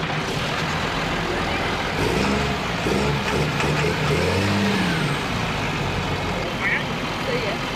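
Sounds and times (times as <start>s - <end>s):
racing vehicle engine starting and revving at the start of a head-to-head race: 0.0s - 6.4s
people talking: 6.3s - 7.6s.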